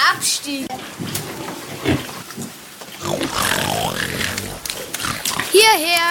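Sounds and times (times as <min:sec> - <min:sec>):
speech: 0:00.4 - 0:01.1, 0:05.7 - 0:06.1
several pigs grunting and snorting: 0:03.0 - 0:05.9.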